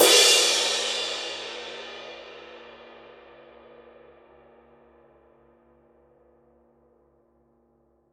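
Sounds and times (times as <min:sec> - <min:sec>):
Paiste Twenty Master dark dry ride cymbal: 0:00.0 - 0:05.4.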